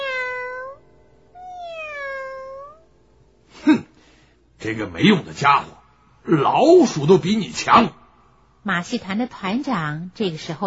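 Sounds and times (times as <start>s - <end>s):
cat meowing: 0.0s - 0.8s, 1.4s - 2.9s
speech: 4.6s - 8.0s, 8.6s - 10.6s.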